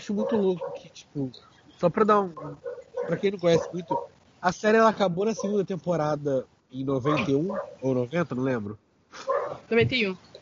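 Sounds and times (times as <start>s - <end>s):
speech: 0.0s - 10.3s
dog barking: 0.2s - 0.9s, 2.4s - 4.2s, 5.4s - 5.6s, 7.0s - 7.8s, 9.2s - 9.7s.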